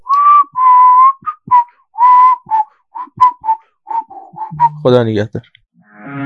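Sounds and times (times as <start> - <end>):
person whistling: 0.0 - 4.9
speech: 4.8 - 5.6.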